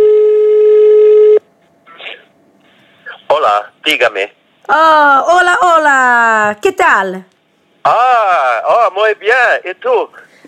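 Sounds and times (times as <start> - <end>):
loud steady telephone buzzing tone as a call is placed: 0.0 - 1.4
speech: 3.9 - 10.4.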